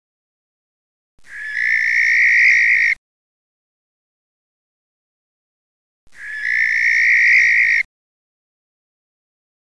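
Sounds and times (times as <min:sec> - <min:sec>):
male barn owl screeching: 0:01.2 - 0:03.0, 0:06.1 - 0:07.9.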